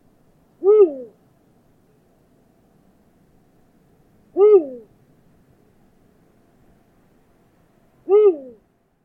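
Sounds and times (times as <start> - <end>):
eagle owl hooting: 0.6 - 1.2, 4.3 - 4.9, 8.0 - 8.6.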